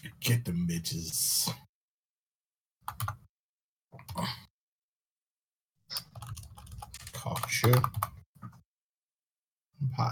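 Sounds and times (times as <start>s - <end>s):
speech: 0.0s - 1.6s, 2.9s - 3.2s, 7.5s - 8.1s, 10.0s - 10.1s
typing on a computer keyboard: 2.8s - 3.2s, 6.0s - 8.2s.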